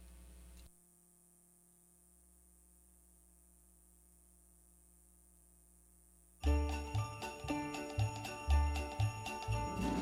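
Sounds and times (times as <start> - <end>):
bright jingling bells: 6.4 - 10.0
lively Christmas song intro with instrumental backing: 6.4 - 10.0.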